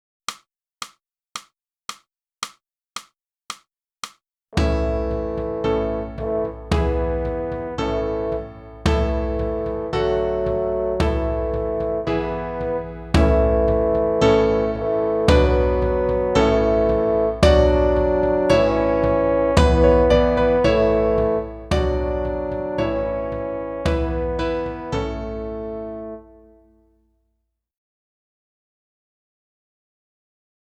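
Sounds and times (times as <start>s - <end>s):
flute playing an anthem: 4.6s - 26.7s.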